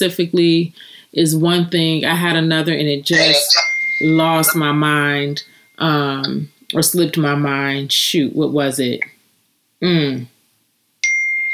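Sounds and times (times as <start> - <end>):
speech: 0.0 - 9.2, 9.8 - 10.3
brief voiced sound: 3.1 - 3.7
electronic chime like a phone notification ding: 3.1 - 5.8, 11.0 - 11.5.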